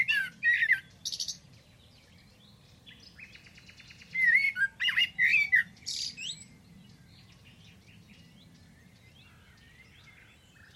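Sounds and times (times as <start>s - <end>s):
bird calls: 0.0s - 10.7s.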